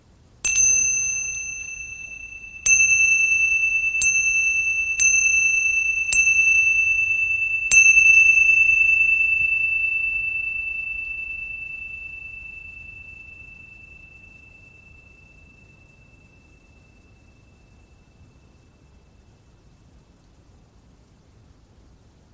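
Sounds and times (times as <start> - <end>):
bright meditation chime ringing: 0.4 - 19.6.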